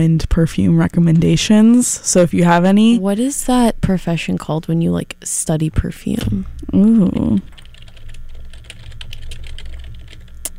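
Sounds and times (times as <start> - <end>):
speech: 0.0 - 7.5
low hum: 0.0 - 10.5
computer keyboard typing: 7.1 - 10.5.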